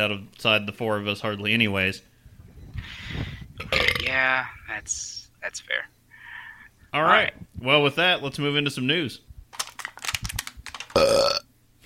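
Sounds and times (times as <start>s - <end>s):
speech: 0.0s - 2.1s, 3.6s - 6.0s, 6.9s - 9.6s, 11.0s - 11.3s
low rumbling throat noises: 2.3s - 4.2s
loud burp with strong tonal rasp: 3.6s - 4.2s, 10.9s - 11.5s.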